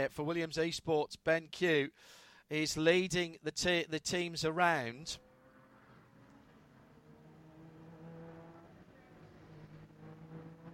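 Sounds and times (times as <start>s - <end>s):
speech: 0.0s - 5.2s
racing car engines revving: 5.0s - 10.7s.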